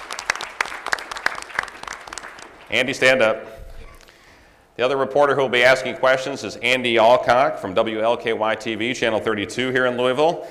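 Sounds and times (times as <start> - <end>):
audience applause at a televised panel event: 0.0 - 2.9
speech: 2.7 - 3.6, 4.8 - 10.4.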